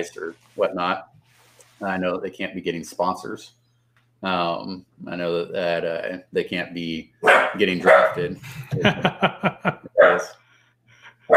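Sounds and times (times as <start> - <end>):
speech: 0.0 - 1.1, 1.8 - 3.6, 4.2 - 10.4
dog barking: 7.2 - 8.4, 10.0 - 10.4
laughter: 8.2 - 10.1.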